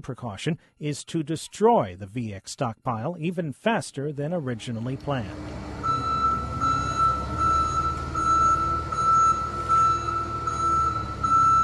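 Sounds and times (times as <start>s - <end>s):
speech: 0.0s - 5.7s
loud rumbling forklift engine and machinery drone at the Newport Chemical Depot: 4.6s - 11.6s
forklift truck high-pitched reversing beeps: 5.8s - 11.6s.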